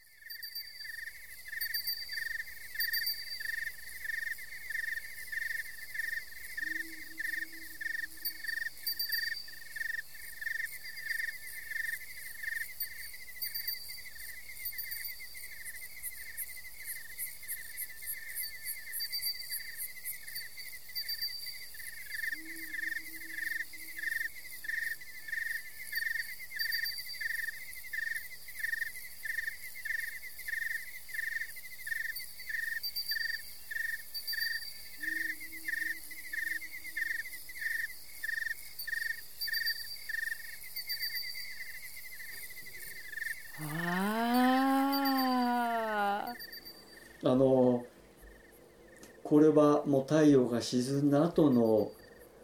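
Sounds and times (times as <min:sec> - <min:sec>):
insects chirping in primeval forest: 0:00.0 - 0:52.4
low rising calls: 0:43.5 - 0:46.8
speech: 0:49.3 - 0:52.0.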